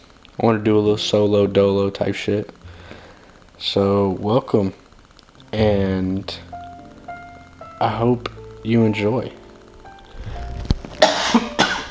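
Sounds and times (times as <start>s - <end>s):
speech: 0.4s - 2.6s, 3.6s - 4.8s, 5.5s - 6.5s, 7.8s - 9.4s
person coughing chesty coughs: 11.0s - 11.9s.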